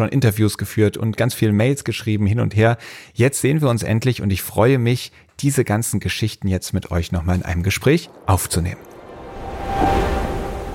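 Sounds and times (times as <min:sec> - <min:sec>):
speech: 0:00.0 - 0:09.0
ocean waves rushing: 0:07.6 - 0:10.7.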